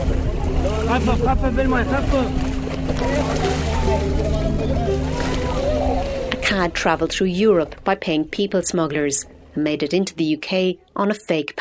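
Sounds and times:
water sloshing around the boat hull: 0:00.0 - 0:08.0
several people talking loudly: 0:00.0 - 0:09.8
boat engine droning at sea on a Mediterranean crossing: 0:00.0 - 0:10.4
speech: 0:00.9 - 0:05.3, 0:06.5 - 0:11.6.

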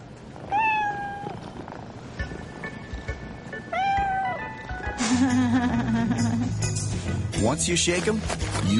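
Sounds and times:
cat meowing: 0:00.4 - 0:01.5, 0:03.7 - 0:04.5
speech: 0:05.0 - 0:08.7.

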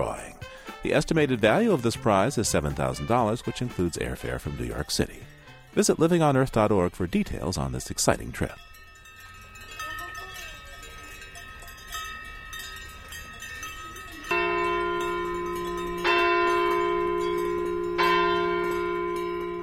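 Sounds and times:
speech: 0:00.0 - 0:08.7
cowbells jangling on a herd of cows: 0:00.0 - 0:19.6
church bells ringing in a Swiss alpine village: 0:08.6 - 0:19.6.

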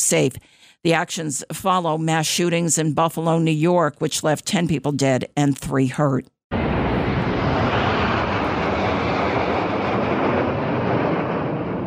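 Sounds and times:
speech: 0:00.1 - 0:06.4
Royal Air Force military aircraft flypast at a Platinum Jubilee celebration: 0:06.5 - 0:11.8.

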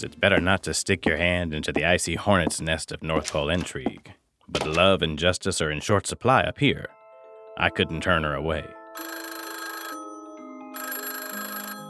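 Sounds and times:
speech: 0:00.0 - 0:07.0, 0:07.6 - 0:09.2
telephone ringing with bright rattling bell tone: 0:09.0 - 0:11.8.

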